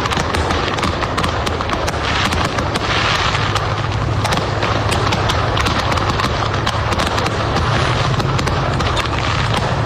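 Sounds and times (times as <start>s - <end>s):
fireworks crackling and popping from a burning truck: 0.0s - 9.8s
steady low rumble: 2.0s - 9.8s.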